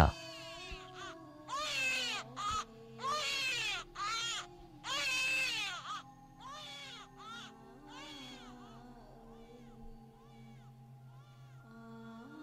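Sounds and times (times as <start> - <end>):
newborn baby crying in a maternity ward corridor: 0.0 - 8.8.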